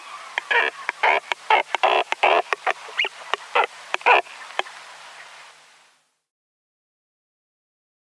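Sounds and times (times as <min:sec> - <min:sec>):
European shag giving harsh clicking and rasping calls: 0:00.3 - 0:04.7.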